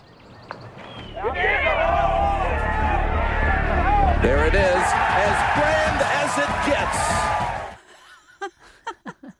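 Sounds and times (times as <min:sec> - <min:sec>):
large golf gallery cheering and yelling: 0:01.1 - 0:07.8
speech: 0:04.2 - 0:05.8.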